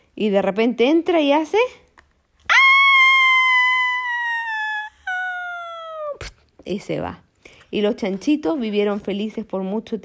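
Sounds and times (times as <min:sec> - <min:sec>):
speech: 0:00.2 - 0:01.8, 0:06.6 - 0:10.0
voice imitating anguished howl of a burned wolf: 0:02.5 - 0:06.2.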